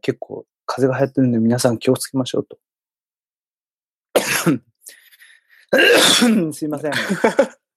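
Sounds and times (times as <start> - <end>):
speech: 0.0 - 2.7, 4.4 - 4.7, 5.7 - 7.6
man coughing: 4.2 - 4.7, 5.7 - 7.6.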